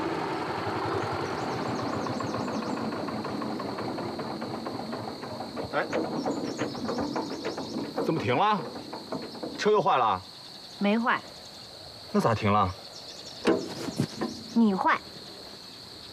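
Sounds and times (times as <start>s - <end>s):
tractor engine chugging: 0.0s - 10.4s, 13.5s - 15.0s
voices: 1.6s - 11.3s, 13.5s - 15.2s.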